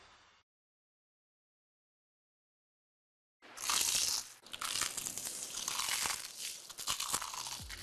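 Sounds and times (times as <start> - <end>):
crunching bite into crispy crumb-coated fried chicken: 3.6 - 7.8.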